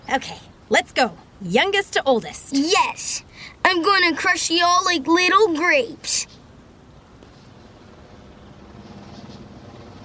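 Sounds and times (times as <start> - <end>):
speech: 0.1 - 6.4
low mechanical drone of a distant helicopter: 6.0 - 10.0.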